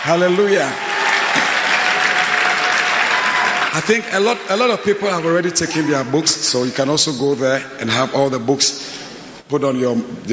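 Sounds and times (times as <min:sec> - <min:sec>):
speech: 0:00.0 - 0:01.5, 0:03.7 - 0:10.3
crowd applauding: 0:00.0 - 0:06.5.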